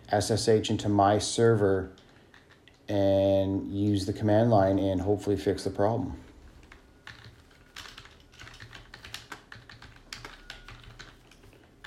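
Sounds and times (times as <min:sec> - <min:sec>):
speech: 0:00.1 - 0:02.0, 0:02.9 - 0:06.2
typing on a computer keyboard: 0:01.9 - 0:02.9, 0:06.5 - 0:11.8.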